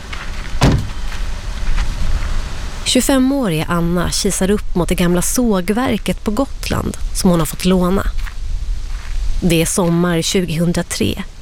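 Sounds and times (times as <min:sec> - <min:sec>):
low outdoor rumble at an old sawmill on Gotland, Sweden: 0:00.0 - 0:11.4
heavy thud of instruments being unloaded from a car: 0:00.6 - 0:01.1
speech: 0:02.9 - 0:08.2, 0:09.4 - 0:11.3.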